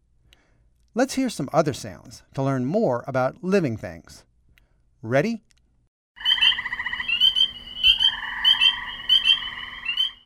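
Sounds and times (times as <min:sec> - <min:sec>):
speech: 0:01.0 - 0:04.3, 0:05.0 - 0:05.5
frogs croaking in spring seeking mates: 0:06.2 - 0:10.2.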